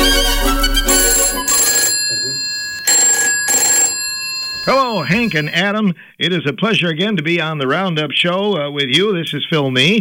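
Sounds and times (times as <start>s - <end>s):
telephone ringing: 0.8s - 5.6s
speech: 4.7s - 10.0s.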